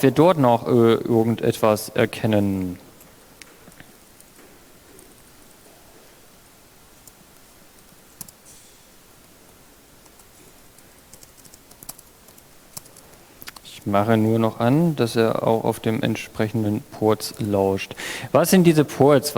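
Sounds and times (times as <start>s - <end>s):
speech: 0.0s - 2.8s, 13.9s - 19.3s
steady hiss: 0.0s - 19.3s
typing keyboard shortcuts on a computer keyboard: 7.8s - 8.4s, 10.0s - 13.6s.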